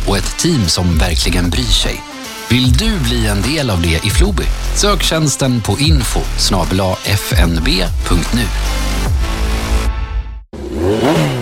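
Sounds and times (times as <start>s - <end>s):
speech: 0.1s - 9.2s
car engine revving hard: 10.6s - 11.3s.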